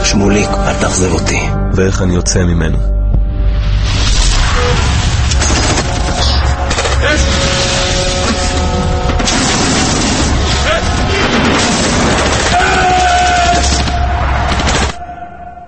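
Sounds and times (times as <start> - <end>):
speech: 0.2 - 3.0
booming explosions in a war film: 3.9 - 15.1
heavy tank gunfire in a war film: 9.2 - 15.0.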